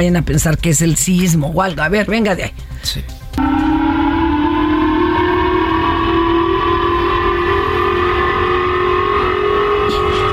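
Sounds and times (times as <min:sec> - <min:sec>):
speech: 0:00.0 - 0:03.2
Japanese air-raid siren wailing: 0:03.4 - 0:10.3.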